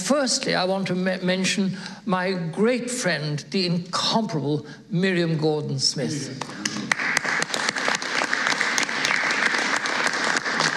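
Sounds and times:
speech: 0.1s - 6.6s
audience applause: 6.4s - 10.7s.

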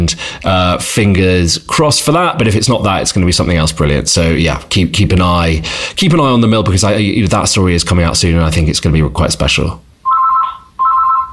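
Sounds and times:
speech: 0.1s - 9.9s
old-fashioned landline telephone ringing in a home: 10.0s - 11.3s.

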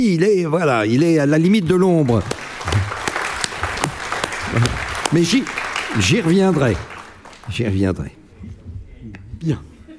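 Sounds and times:
speech: 0.0s - 2.4s, 4.5s - 6.9s, 7.5s - 8.2s, 9.4s - 9.7s
audience applause: 2.1s - 7.6s
louder individual claps: 2.1s - 7.6s.

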